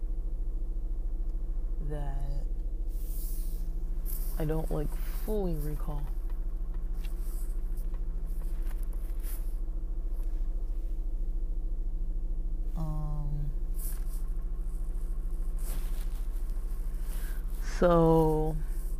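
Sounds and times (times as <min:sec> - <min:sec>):
car engine humming while reversing out of parking: 0:00.0 - 0:18.9
short bursts of voice: 0:01.8 - 0:02.5, 0:12.8 - 0:13.6, 0:17.6 - 0:18.7
speech: 0:01.9 - 0:02.5, 0:04.4 - 0:06.2, 0:17.8 - 0:18.6.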